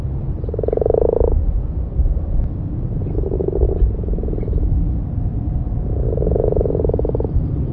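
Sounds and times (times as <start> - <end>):
low steady rumble: 0.0 - 7.7
common frog purring croaks: 0.4 - 1.5, 2.9 - 4.8, 5.5 - 7.7.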